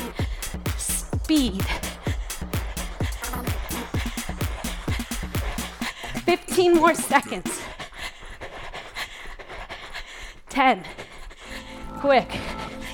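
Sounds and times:
heavy panting breaths: 0:00.0 - 0:12.9
speech: 0:01.3 - 0:01.9, 0:06.3 - 0:07.7, 0:10.6 - 0:11.0, 0:12.0 - 0:12.6
feet pounding a floor during fast knees-up: 0:01.6 - 0:07.0.

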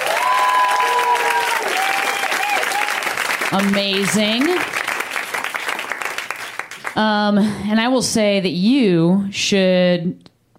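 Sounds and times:
scattered whoops and cheers: 0:00.0 - 0:03.1
audience applauding for comedians: 0:00.0 - 0:07.0
speech: 0:03.5 - 0:04.8, 0:07.0 - 0:10.3.

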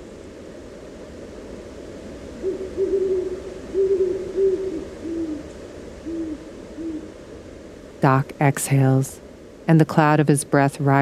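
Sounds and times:
faint hiss: 0:00.0 - 0:11.0
owl hooting: 0:02.3 - 0:07.2
speech: 0:08.0 - 0:11.0.

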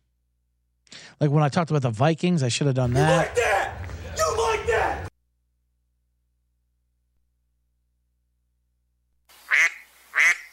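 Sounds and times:
speech: 0:01.2 - 0:03.8
faint hiss: 0:09.3 - 0:10.5
duck quack sound effect from a soundboard: 0:09.5 - 0:10.5.

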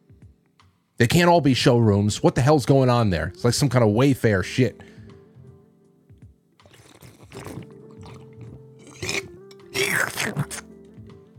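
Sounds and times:
speech: 0:01.0 - 0:05.0
slurping of a drink: 0:06.6 - 0:10.7
soft mouth noises: 0:06.6 - 0:10.7.

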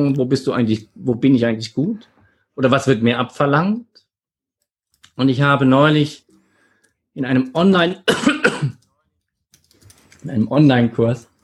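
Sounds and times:
speech: 0:00.0 - 0:03.9, 0:05.2 - 0:06.2, 0:07.2 - 0:08.4, 0:10.2 - 0:11.3
harsh throaty coughs: 0:08.0 - 0:08.9.

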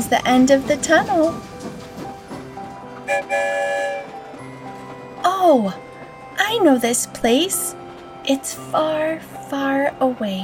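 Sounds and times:
train rumbling on rails: 0:00.0 - 0:10.4
speech: 0:00.1 - 0:01.5, 0:03.1 - 0:04.1, 0:05.3 - 0:10.4
train whistle: 0:03.0 - 0:04.4.

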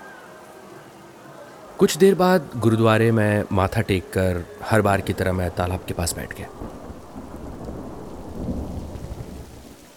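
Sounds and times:
heavy rain pouring beside a pond at a gurdwara: 0:00.0 - 0:09.9
speech: 0:01.8 - 0:06.8.

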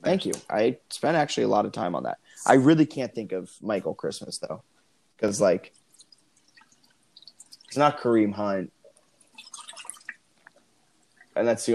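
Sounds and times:
speech: 0:00.1 - 0:05.8, 0:07.7 - 0:08.8, 0:11.4 - 0:11.7
soda dripping: 0:05.2 - 0:11.4
Coke being poured out: 0:05.7 - 0:08.2, 0:08.9 - 0:11.4.

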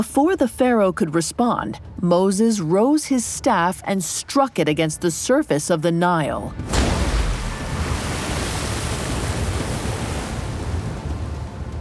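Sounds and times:
speech: 0:00.0 - 0:07.0
heavy water sloshing and churning: 0:06.5 - 0:11.7
waves rushing: 0:06.6 - 0:11.4.

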